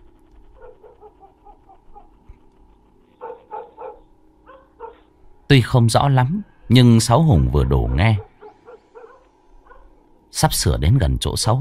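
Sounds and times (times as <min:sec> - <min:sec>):
dog barking out on a large road: 0:00.6 - 0:02.2, 0:03.2 - 0:05.1, 0:07.5 - 0:09.9
speech: 0:05.5 - 0:08.3, 0:10.4 - 0:11.5.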